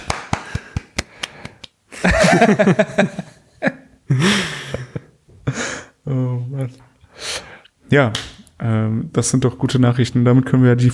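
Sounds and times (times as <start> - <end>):
hands clapping: 0.0 - 1.8, 8.1 - 8.5
speech: 2.0 - 3.3, 7.9 - 10.9
laughter: 2.0 - 5.1.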